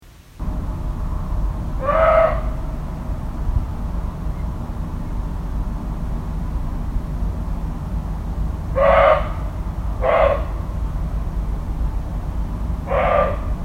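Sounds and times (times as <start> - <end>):
low background rumble: 0.1 - 13.6
deer calling: 1.8 - 2.6, 8.7 - 10.7, 12.8 - 13.6.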